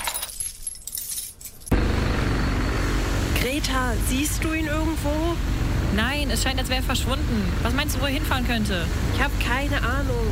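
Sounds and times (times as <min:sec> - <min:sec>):
keys jingling: 0:00.0 - 0:01.7
steady broadband roar: 0:01.7 - 0:10.2
speech: 0:03.6 - 0:10.2.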